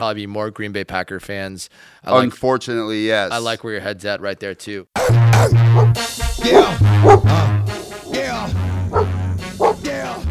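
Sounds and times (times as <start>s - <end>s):
speech: 0.0s - 7.6s
several dogs barking loudly: 5.0s - 10.2s.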